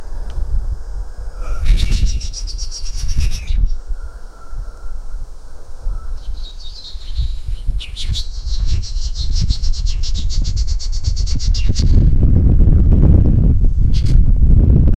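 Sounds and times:
wind: 0.0 - 14.9
person whispering: 1.4 - 2.1.

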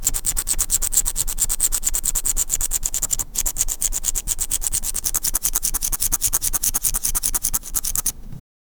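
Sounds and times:
ink quill scratching while writing: 0.0 - 8.3.

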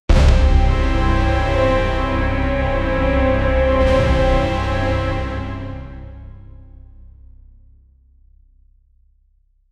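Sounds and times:
bold driving percussion: 0.1 - 6.2.

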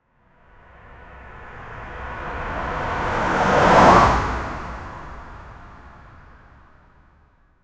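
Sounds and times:
drift car passing by on a street: 0.8 - 6.7.

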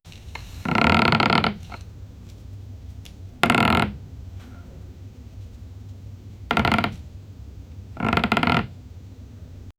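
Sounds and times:
wood ambience: 0.1 - 4.9, 5.6 - 7.2, 7.9 - 8.8.

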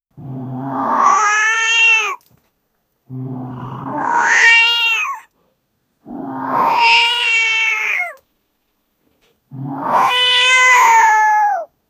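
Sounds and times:
meinkun cat screaming: 0.7 - 2.2, 3.7 - 5.3, 6.2 - 8.2, 9.8 - 11.7.

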